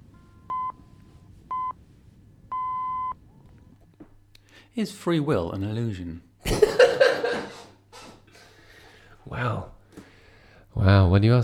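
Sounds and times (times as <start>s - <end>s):
tense countdown timer electronic beeps: 0.5s - 0.8s
speech: 4.8s - 6.8s, 9.3s - 9.7s, 10.8s - 11.4s
laughter: 6.4s - 8.4s.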